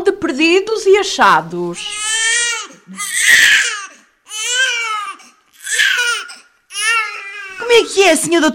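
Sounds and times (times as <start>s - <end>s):
speech: 0.3s - 3.4s, 7.7s - 8.5s
newborn baby wailing in a maternity ward: 1.8s - 8.0s.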